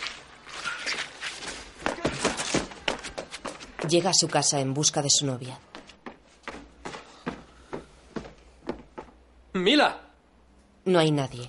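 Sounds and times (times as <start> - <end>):
staggering running footsteps on a street: 0.9 - 9.3
speech: 3.8 - 5.8, 9.6 - 10.0, 10.8 - 11.4.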